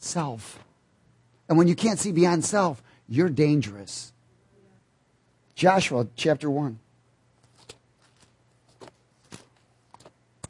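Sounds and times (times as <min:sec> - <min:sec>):
speech: 0:00.1 - 0:00.7, 0:01.5 - 0:04.2, 0:05.6 - 0:06.8
many Bible pages turning in a large room: 0:07.4 - 0:10.2.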